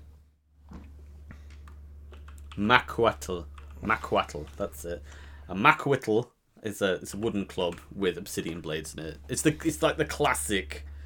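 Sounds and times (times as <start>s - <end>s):
steady low electrical hum: 0.0s - 11.0s
typing on a computer keyboard: 1.6s - 2.6s
speech: 2.6s - 10.9s.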